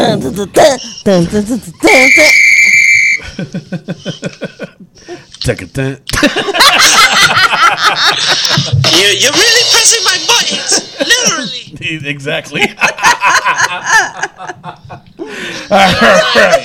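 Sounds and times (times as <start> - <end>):
speech: 0.1 - 2.5, 3.4 - 4.5, 5.4 - 16.6
whistle blast: 1.9 - 3.2
laughter: 3.2 - 4.9, 6.1 - 11.5, 12.4 - 16.6.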